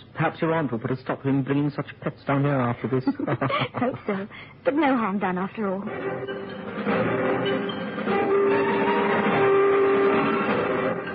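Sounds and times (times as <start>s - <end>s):
speech: 0.2s - 8.9s
laughter: 2.9s - 4.2s
train horn blasts: 6.0s - 11.1s.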